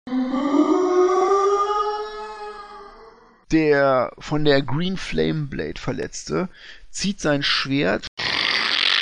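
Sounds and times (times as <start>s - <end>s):
guttural zombie-like growl voiced by a person: 0.1s - 3.2s
speech: 3.5s - 8.3s.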